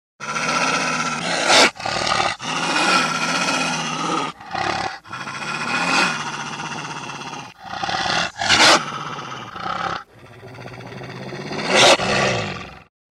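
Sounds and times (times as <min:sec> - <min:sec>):
wolf growling: 0:00.2 - 0:12.9.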